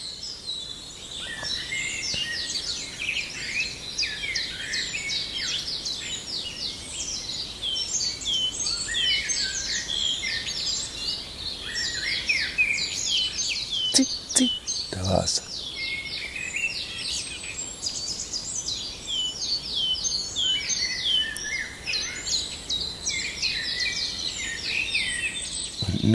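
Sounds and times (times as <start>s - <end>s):
dense chorus of other birds chirping and trilling: 0.0s - 26.1s
common chiffchaff singing: 14.0s - 15.4s.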